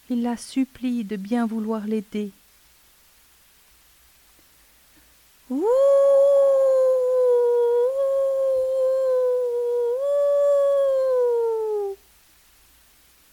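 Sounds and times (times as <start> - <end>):
speech: 0.1 - 2.4, 5.5 - 6.1
coyote howling: 5.5 - 12.0.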